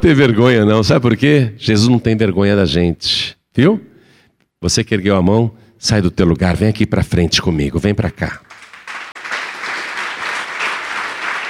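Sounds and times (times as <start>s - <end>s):
speech: 0.0s - 3.9s, 4.6s - 8.5s
church congregation applauding: 8.4s - 11.4s.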